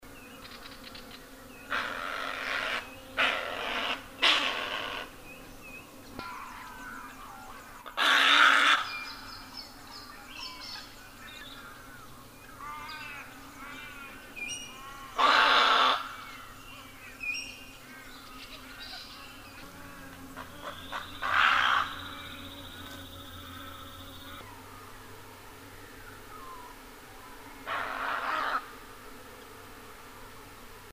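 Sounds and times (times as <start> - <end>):
white-faced heron: 1.7 - 5.1, 6.2 - 9.0, 14.8 - 16.5, 20.4 - 22.0, 27.6 - 28.7.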